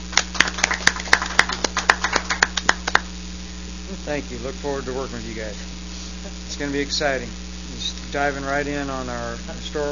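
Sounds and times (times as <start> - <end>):
people clapping: 0.0 - 3.2
speech: 4.1 - 9.8.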